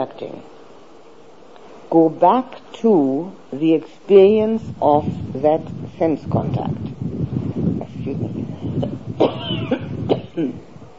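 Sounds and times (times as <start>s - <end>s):
speech: 0.0s - 0.6s, 1.9s - 6.9s, 8.1s - 8.9s, 10.4s - 10.7s
outdoor rumble: 0.0s - 10.9s
person coughing: 9.2s - 10.6s.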